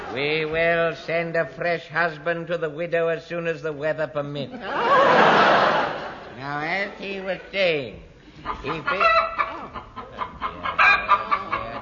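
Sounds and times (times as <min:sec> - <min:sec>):
speech: 0:00.1 - 0:09.3
laughter: 0:04.5 - 0:06.4, 0:08.3 - 0:11.7
chicken clucking: 0:08.4 - 0:11.7.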